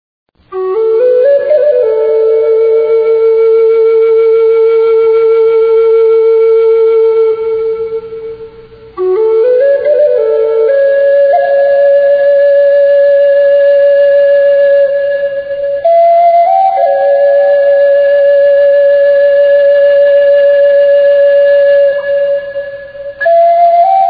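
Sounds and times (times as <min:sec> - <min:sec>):
distant Native American flute: 0:00.4 - 0:24.0.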